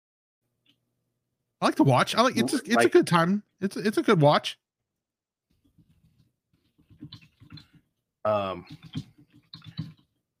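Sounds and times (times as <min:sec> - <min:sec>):
speech: 0:01.6 - 0:04.6, 0:08.2 - 0:09.1
typing on a computer keyboard: 0:06.8 - 0:07.8, 0:08.7 - 0:10.2.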